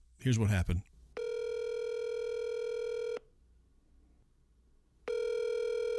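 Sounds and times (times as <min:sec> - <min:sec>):
speech: 0:00.2 - 0:00.9
telephone ringing tone over the line: 0:01.2 - 0:03.2, 0:05.1 - 0:05.9.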